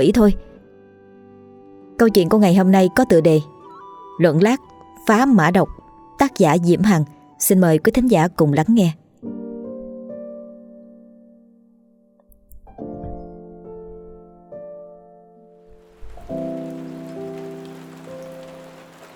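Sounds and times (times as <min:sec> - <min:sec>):
speech: 0:00.0 - 0:00.5, 0:02.0 - 0:03.6, 0:04.2 - 0:09.0
heavy rain pouring down in strong wind: 0:15.7 - 0:19.1.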